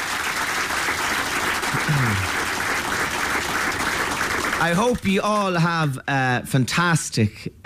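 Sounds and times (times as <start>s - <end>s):
sizable crowd applauding for a producer: 0.0s - 5.6s
speech: 1.8s - 2.4s, 4.6s - 7.6s.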